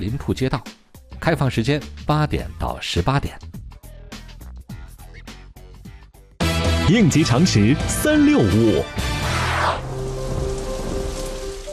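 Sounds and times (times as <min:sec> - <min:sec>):
speech: 0:00.0 - 0:00.7, 0:01.3 - 0:03.5, 0:06.9 - 0:09.0
dense rain in a thunderstorm: 0:09.2 - 0:11.7
thunder rumbling: 0:09.8 - 0:11.7.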